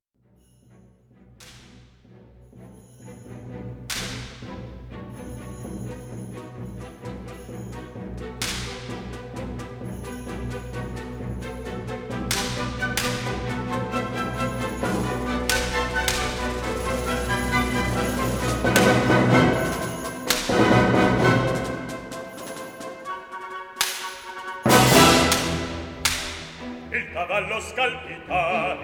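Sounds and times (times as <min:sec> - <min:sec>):
full orchestra playing an Italian opera aria introduction: 0:00.7 - 0:28.8
whip-like cracks: 0:01.4 - 0:02.0, 0:03.9 - 0:04.6, 0:08.4 - 0:09.2, 0:12.3 - 0:13.8, 0:14.4 - 0:20.7, 0:23.8 - 0:26.7.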